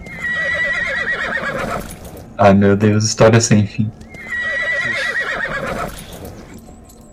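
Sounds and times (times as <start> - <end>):
horse stuck in a pit neighing: 0.0 - 2.1, 4.0 - 6.6
speech: 2.4 - 4.1.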